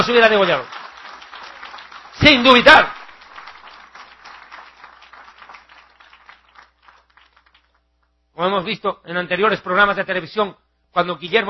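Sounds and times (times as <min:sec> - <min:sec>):
speech: 0:00.0 - 0:00.8, 0:02.2 - 0:03.0, 0:08.4 - 0:11.4
church congregation applauding during a sermon: 0:00.0 - 0:07.8.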